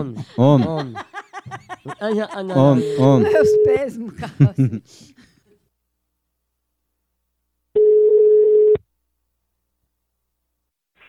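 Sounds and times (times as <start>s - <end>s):
laughter: 0.0s - 5.5s
person talking: 1.9s - 4.7s
telephone tone while a call is being placed: 2.7s - 3.8s, 7.8s - 8.8s.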